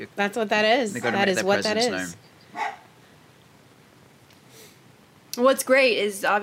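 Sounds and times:
speech: 0:00.0 - 0:02.7, 0:05.4 - 0:06.4
short bark from household dogs: 0:02.5 - 0:02.9.

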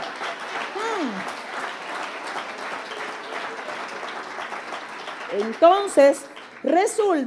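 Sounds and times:
audience applauding loudly: 0:00.0 - 0:07.2
short rising vocal cry: 0:00.8 - 0:01.2
speech: 0:05.4 - 0:07.2.

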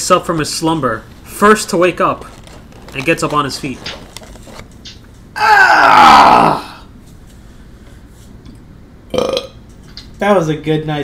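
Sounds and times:
speech: 0:00.1 - 0:04.0, 0:10.2 - 0:11.0
loud drawn-out morning burp: 0:05.4 - 0:06.8, 0:09.1 - 0:09.6.

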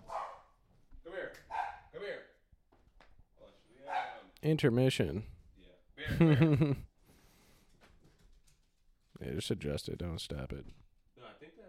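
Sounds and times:
dogs yipping softly: 0:00.0 - 0:00.6, 0:01.5 - 0:01.9
several dogs barking: 0:00.0 - 0:00.6, 0:01.5 - 0:01.9, 0:03.8 - 0:04.3
speech: 0:04.4 - 0:05.3, 0:06.1 - 0:06.9, 0:09.2 - 0:10.8
laughter: 0:06.0 - 0:06.9.

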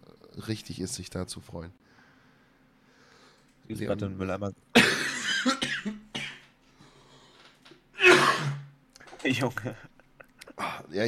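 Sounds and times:
speech: 0:00.4 - 0:01.8, 0:03.7 - 0:05.0, 0:05.8 - 0:06.1, 0:09.2 - 0:09.9
person coughing: 0:04.8 - 0:06.5, 0:08.0 - 0:08.7.

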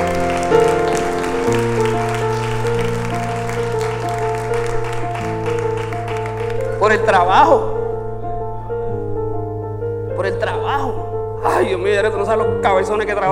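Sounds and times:
audience applause: 0:00.0 - 0:07.3
sustained musical chords: 0:00.0 - 0:13.3
speech: 0:06.9 - 0:07.7, 0:11.9 - 0:13.3.

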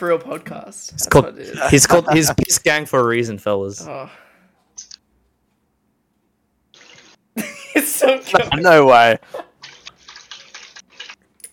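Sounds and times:
speech: 0:00.0 - 0:04.2, 0:08.1 - 0:09.5
water splashing: 0:09.6 - 0:11.2.

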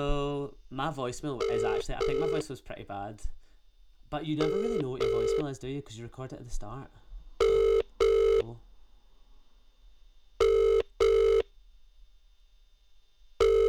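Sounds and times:
speech: 0:00.0 - 0:03.4, 0:04.1 - 0:07.0, 0:08.5 - 0:08.7
telephone ringback tone: 0:01.4 - 0:02.5, 0:04.4 - 0:05.5, 0:07.4 - 0:08.5, 0:10.4 - 0:11.4, 0:13.4 - 0:13.6.

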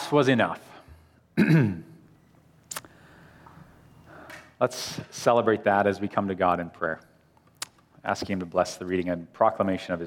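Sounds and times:
speech: 0:00.1 - 0:00.7, 0:01.4 - 0:01.9, 0:04.6 - 0:07.1, 0:08.0 - 0:10.0
gravelly throat clearing: 0:01.4 - 0:02.0.

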